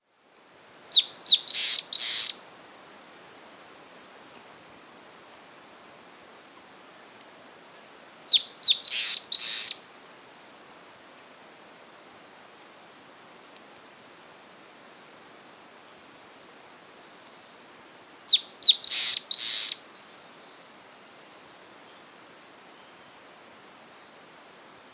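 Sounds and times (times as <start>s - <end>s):
long-tailed antbird Drymophila caudata calling: 0.9s - 2.4s, 8.3s - 9.8s, 18.3s - 19.8s.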